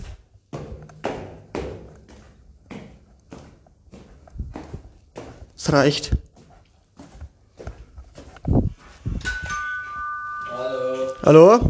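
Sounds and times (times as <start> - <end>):
heavy footsteps stomping up a staircase: 0.0 - 9.2
speech: 5.6 - 6.2, 11.3 - 11.6.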